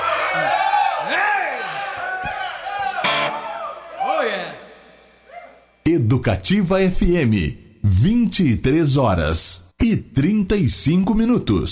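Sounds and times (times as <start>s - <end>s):
audience cheering and shouting: 0.0s - 5.8s
speech: 5.8s - 11.7s.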